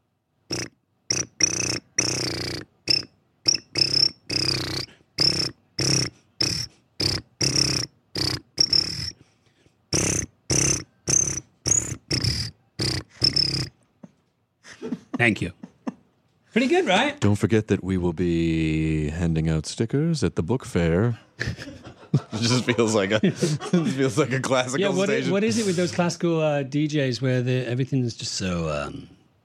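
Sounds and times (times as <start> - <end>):
crickets chirping in loud bursts: 0.5 - 9.2, 9.9 - 13.8
laughter: 14.0 - 16.1, 21.3 - 25.9
speech: 15.2 - 15.6, 16.6 - 21.3, 22.4 - 29.2.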